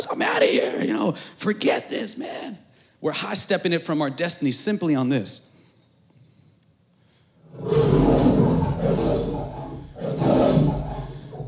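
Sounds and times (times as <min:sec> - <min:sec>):
speech: 0:00.0 - 0:05.5
lion at the LA Zoo roaring: 0:07.5 - 0:11.4.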